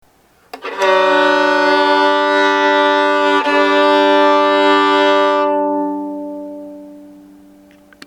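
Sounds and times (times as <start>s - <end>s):
G-D double stop on a violin for tuning: 0.6s - 7.9s.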